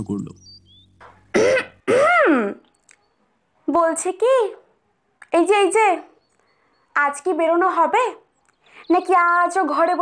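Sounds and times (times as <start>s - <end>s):
speech: 0.0s - 0.5s, 3.7s - 4.6s, 5.3s - 6.1s, 7.0s - 8.2s, 8.8s - 10.0s
throat clearing: 1.3s - 2.3s.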